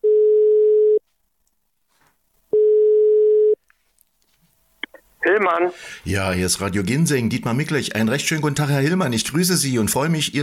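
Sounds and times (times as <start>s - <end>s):
ringing tone of an outgoing telephone call: 0.0s - 1.0s, 2.5s - 3.6s
speech: 5.3s - 10.4s.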